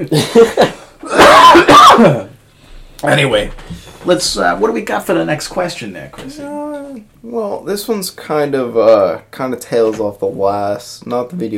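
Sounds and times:
speech: 0.0s - 2.3s, 3.0s - 11.5s
person coughing wet hacking coughs: 0.4s - 2.3s.

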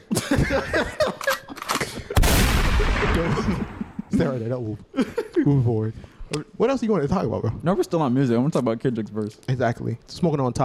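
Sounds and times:
laughter: 0.0s - 5.7s
speech: 0.5s - 1.3s, 3.2s - 10.6s
gunshot sound effect: 2.2s - 4.1s.

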